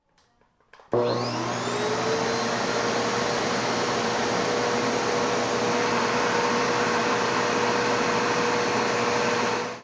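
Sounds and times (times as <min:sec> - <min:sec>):
vacuum cleaner: 0:00.8 - 0:09.8.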